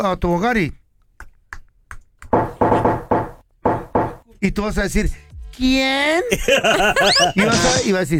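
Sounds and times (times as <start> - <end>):
speech: 0.0 - 0.8, 4.4 - 8.1
louder heavier pounding knocks: 2.4 - 4.2
laughter: 6.3 - 8.0.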